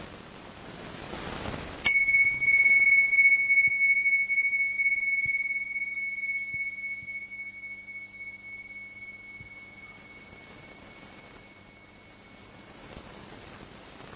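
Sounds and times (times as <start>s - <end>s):
faint low noise: 0.0s - 14.1s
small bell struck and ringing: 1.9s - 13.2s.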